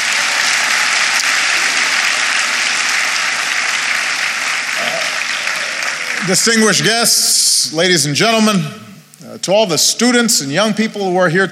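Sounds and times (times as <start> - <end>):
applause from a large crowd: 0.0 - 7.4
speech: 6.3 - 11.5.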